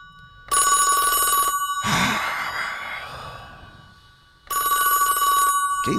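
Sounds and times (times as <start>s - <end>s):
telephone ringing with bright electronic tone: 0.0s - 2.2s, 3.6s - 5.9s
breathy sigh or grunt: 1.8s - 3.9s.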